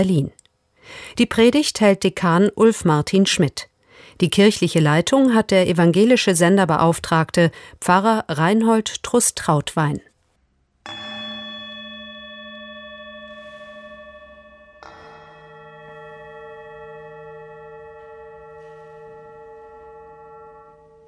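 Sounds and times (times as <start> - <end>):
speech: 0.0 - 10.1
two struck singing bowls ringing: 10.8 - 21.0.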